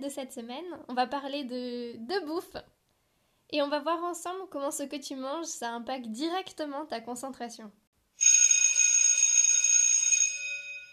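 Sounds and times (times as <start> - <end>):
speech: 0.0 - 2.8, 3.5 - 8.4
electric bell ringing for noon: 8.2 - 10.9.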